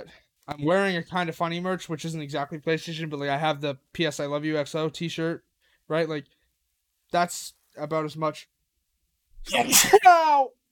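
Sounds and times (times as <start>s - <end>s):
speech: 0.1s - 6.4s, 7.1s - 8.6s, 9.4s - 10.6s
sneeze: 9.4s - 10.4s.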